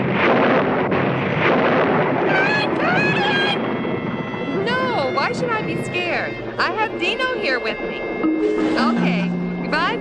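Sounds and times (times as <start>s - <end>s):
loud continuous rolling thunder during a storm: 0.0s - 9.9s
high wavering whine-like tones: 2.8s - 9.9s
speech: 5.7s - 9.9s.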